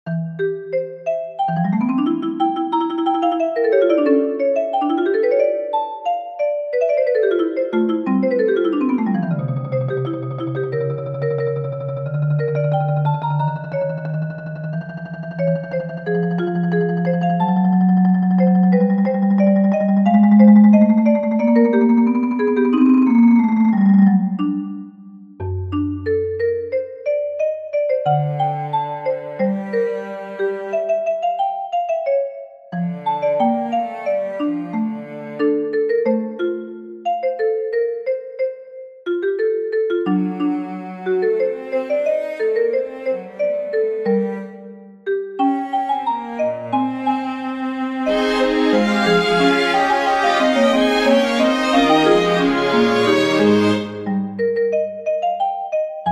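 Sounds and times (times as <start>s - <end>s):
marimba: 0.1s - 47.2s, 48.1s - 56.1s
strings: 28.1s - 31.0s, 32.8s - 35.7s, 40.2s - 44.8s, 45.4s - 54.4s.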